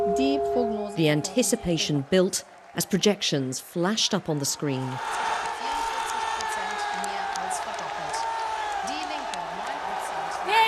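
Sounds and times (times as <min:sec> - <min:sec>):
excited chatter: 0:00.0 - 0:03.4, 0:04.1 - 0:10.6
large crowd cheering at election results: 0:00.0 - 0:10.6
speech: 0:00.2 - 0:05.3
people shouting: 0:04.8 - 0:10.6
whoops: 0:05.4 - 0:10.6.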